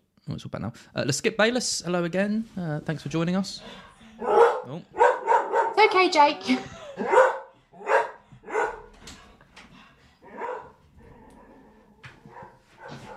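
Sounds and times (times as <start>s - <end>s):
speech: 0.3s - 5.0s, 5.9s - 7.3s
dog barking: 4.2s - 5.8s, 7.0s - 8.9s, 10.2s - 10.8s, 11.4s - 13.1s.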